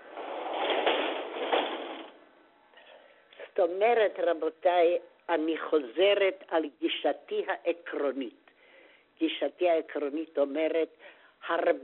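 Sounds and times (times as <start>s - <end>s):
sliding door being pulled shut: 0.0s - 2.2s
speech: 3.6s - 8.4s, 9.2s - 11.8s.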